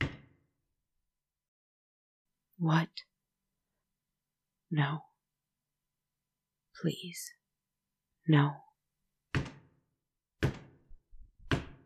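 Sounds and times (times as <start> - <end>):
speech: 2.6 - 3.1, 4.7 - 5.1, 6.8 - 7.4, 8.3 - 8.6
heavy booming knocks on a door: 10.4 - 11.8.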